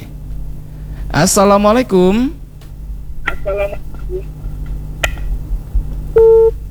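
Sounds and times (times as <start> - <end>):
low hum: 0.0 - 6.6
speech: 1.2 - 2.4
short electronic telephone line beeps: 6.2 - 6.5
steady telephone line tone: 6.2 - 6.6.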